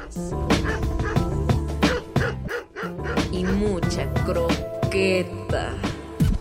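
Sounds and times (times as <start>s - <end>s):
dog barking: 0.0s - 1.3s, 1.9s - 3.7s
speech: 0.1s - 1.0s, 3.4s - 5.9s.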